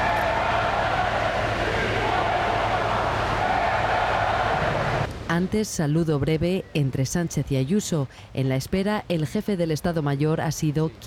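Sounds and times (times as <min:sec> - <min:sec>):
large crowd booing and shouting insults: 0:00.0 - 0:05.1
speech: 0:05.4 - 0:11.0.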